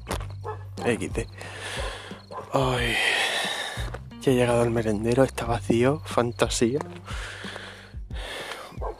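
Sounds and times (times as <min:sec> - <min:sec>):
speech: 0:00.8 - 0:01.9, 0:02.5 - 0:03.2, 0:04.2 - 0:07.4
neighbour's dog barking: 0:02.3 - 0:02.6, 0:08.8 - 0:08.9.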